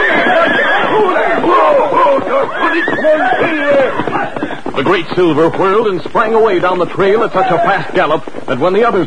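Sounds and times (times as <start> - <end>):
several frightened horses whinnying and neighing: 0.0 - 5.3, 7.1 - 8.1
speech: 4.9 - 9.0.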